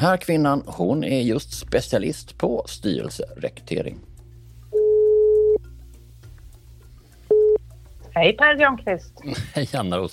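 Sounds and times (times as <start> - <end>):
speech: 0.0 - 4.1, 8.2 - 10.1
telephone ringback tone while a call is being placed: 4.7 - 5.6, 7.3 - 7.6.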